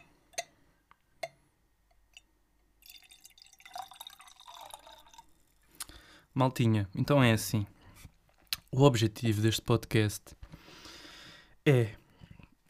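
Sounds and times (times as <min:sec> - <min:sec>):
faint drips or clinks: 0:02.1 - 0:06.0
port wine poured to fill a glass: 0:02.8 - 0:05.7
speech: 0:06.4 - 0:07.8, 0:08.8 - 0:10.4, 0:11.7 - 0:12.0.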